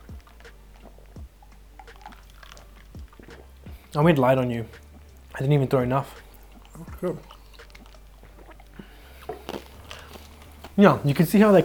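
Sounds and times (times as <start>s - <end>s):
small wet mouth clicks: 0.0s - 4.0s, 6.1s - 10.8s
sipping a drink: 0.0s - 5.4s, 6.0s - 11.6s
soft gulps: 0.0s - 11.6s
speech: 3.9s - 4.8s, 5.4s - 6.2s, 7.0s - 7.3s, 10.8s - 11.6s.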